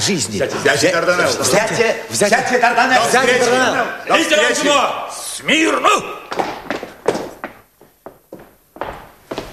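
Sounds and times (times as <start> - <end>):
speech: 0.0 - 6.2
heavy thudding footfalls stomping: 6.2 - 9.5.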